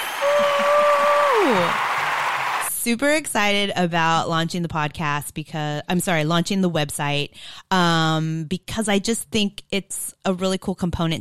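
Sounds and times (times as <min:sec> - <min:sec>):
hand clapping: 0:00.0 - 0:02.7
speech: 0:02.8 - 0:11.1.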